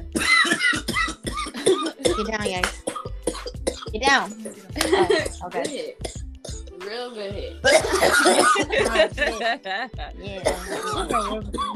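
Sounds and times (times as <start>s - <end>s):
person coughing after inhaling smoke: 0.2s - 3.9s, 4.8s - 6.6s, 7.6s - 9.4s, 10.4s - 11.7s
speech: 2.2s - 2.9s, 3.9s - 6.2s, 6.8s - 11.7s
laughter: 4.8s - 5.4s, 7.8s - 10.2s.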